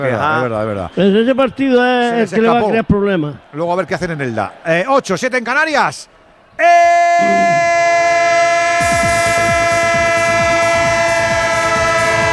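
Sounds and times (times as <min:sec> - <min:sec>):
speech: 0:00.0 - 0:07.9
loud sustained multi-tone train horn: 0:08.1 - 0:12.3.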